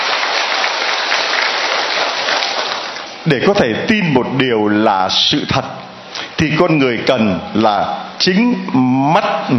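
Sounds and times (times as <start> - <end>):
crowd applause: 0.0 - 3.2
speech: 3.3 - 5.8, 6.4 - 9.5.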